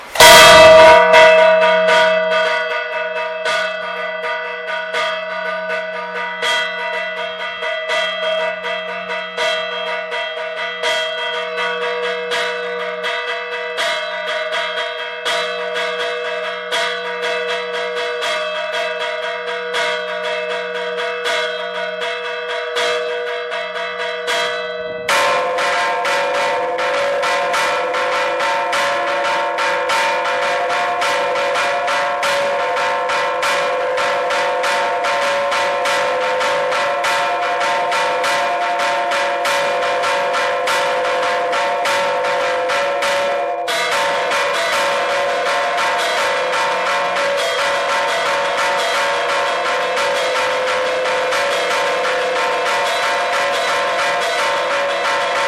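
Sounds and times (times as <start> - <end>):
celebration bells ringing: 0.0 - 55.4.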